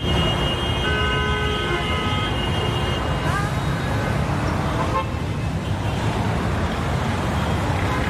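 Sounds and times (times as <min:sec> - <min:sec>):
sustained car horn blaring: 0:00.0 - 0:03.1
dense city traffic rumbling: 0:00.0 - 0:08.0.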